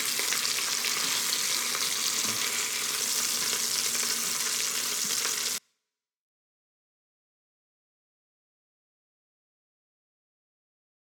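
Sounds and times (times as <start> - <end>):
steak frying in a pan: 0.0 - 5.6.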